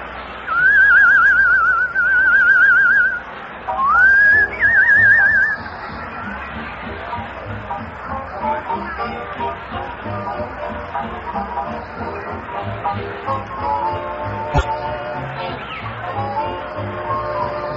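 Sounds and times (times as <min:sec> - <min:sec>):
low murmur: 0:00.0 - 0:17.7
person whistling a tune: 0:00.5 - 0:03.2, 0:03.8 - 0:05.6.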